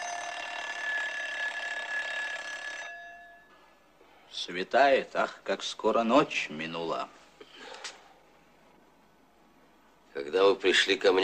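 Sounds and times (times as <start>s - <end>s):
alarm clock ringing in an apartment: 0.0s - 3.8s
speech: 4.4s - 7.2s, 10.2s - 11.2s.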